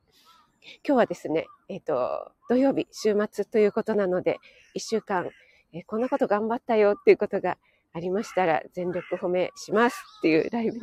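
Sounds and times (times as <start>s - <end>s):
crows cawing outside: 0.2s - 0.5s, 4.4s - 6.4s, 8.1s - 9.4s
speech: 0.6s - 10.8s.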